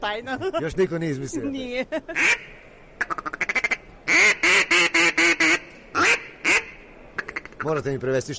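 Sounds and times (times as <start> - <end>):
speech: 0.0 - 3.2, 7.6 - 8.3
duck call lure imitating a duck: 2.2 - 7.7.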